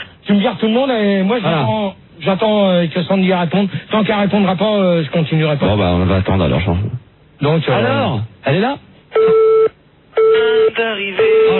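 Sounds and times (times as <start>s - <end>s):
speech: 0.3s - 9.5s, 10.4s - 11.5s
telephone line busy tone through the handset: 9.2s - 11.5s.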